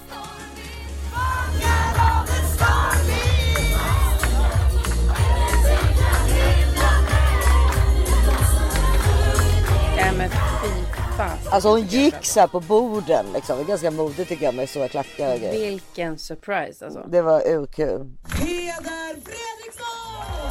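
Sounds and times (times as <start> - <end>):
large crowd screaming and cheering: 0.0 - 10.7, 20.0 - 20.4
speech: 11.6 - 19.5.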